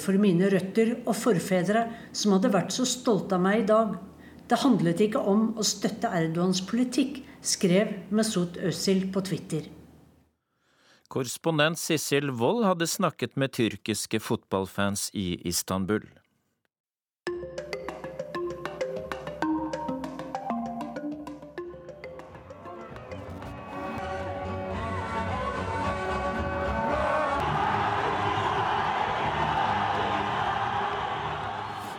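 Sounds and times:
speech: 0.0s - 9.8s, 11.1s - 16.2s
rhythmic pulsing beat: 17.3s - 23.6s
crowd cheering roar: 22.2s - 31.9s.

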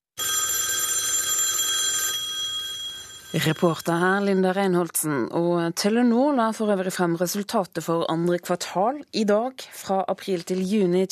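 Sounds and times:
landline telephone bell ringing: 0.2s - 4.3s
speech: 3.3s - 11.0s.

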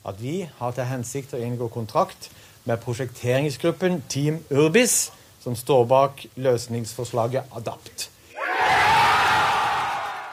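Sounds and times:
speech: 0.0s - 8.2s
architecture team crowd cheering and yelling at winning a contract: 8.4s - 10.3s.

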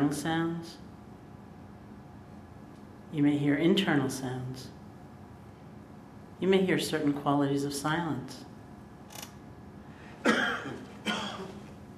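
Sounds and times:
speech: 0.0s - 0.8s, 3.1s - 4.8s, 6.4s - 8.5s
soft restrained cough: 10.2s - 11.7s.

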